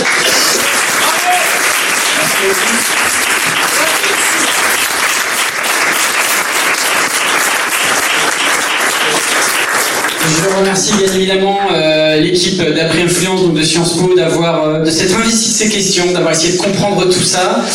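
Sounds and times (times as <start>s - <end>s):
audience applause: 0.0s - 10.7s
speech: 10.3s - 17.7s.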